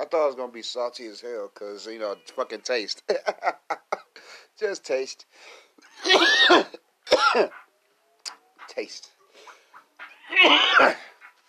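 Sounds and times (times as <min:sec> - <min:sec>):
speech: 0:00.1 - 0:07.6, 0:08.2 - 0:09.1, 0:10.3 - 0:11.1
domestic cat wailing meow: 0:10.0 - 0:11.0
domestic cat soft chirps: 0:10.0 - 0:11.3.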